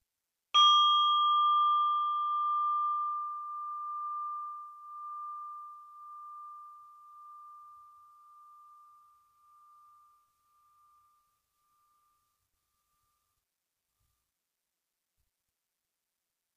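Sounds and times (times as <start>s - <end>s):
meditation bell struck and ringing out: 0.6s - 13.3s.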